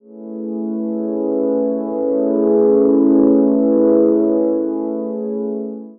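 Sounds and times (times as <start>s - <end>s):
smooth ambient synth pad one shot: 0.0s - 5.9s.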